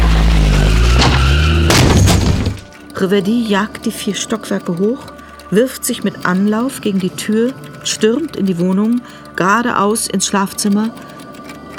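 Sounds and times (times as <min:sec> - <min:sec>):
car pulling up and stopping in front of a house: 0:00.0 - 0:02.7
speech: 0:03.0 - 0:11.2.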